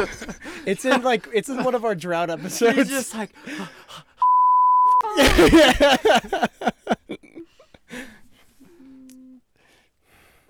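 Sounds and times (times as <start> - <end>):
laughter: 0.0 - 3.8, 5.0 - 8.2
speech: 0.0 - 4.1, 5.2 - 8.1
censor bleep covering a sneeze: 4.2 - 5.0.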